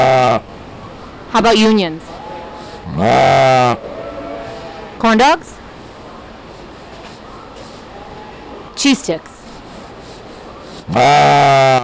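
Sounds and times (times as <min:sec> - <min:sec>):
speech: 0:01.3 - 0:02.1, 0:02.9 - 0:03.9, 0:05.0 - 0:05.6, 0:08.8 - 0:09.3, 0:10.9 - 0:11.8
ewe bleating: 0:02.0 - 0:05.0, 0:10.9 - 0:11.8.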